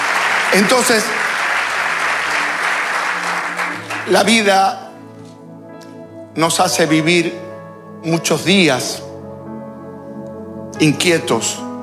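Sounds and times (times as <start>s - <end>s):
congregation applauding: 0.0s - 6.0s
speech: 0.5s - 1.3s, 4.1s - 4.8s, 6.4s - 7.4s, 8.0s - 9.0s, 10.8s - 11.6s.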